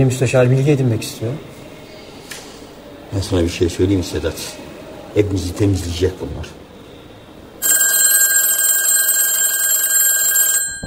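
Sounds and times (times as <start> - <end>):
speech: 0.0 - 1.5, 3.1 - 4.6, 5.2 - 6.6
telephone on a side table ringing with an electronic trill: 7.6 - 10.8.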